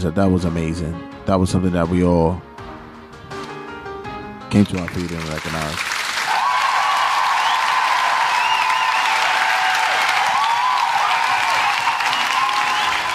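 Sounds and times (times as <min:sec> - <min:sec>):
speech: 0:00.0 - 0:02.5, 0:04.5 - 0:05.9
large crowd applauding loudly: 0:04.6 - 0:13.1
scattered cheers: 0:06.2 - 0:13.1.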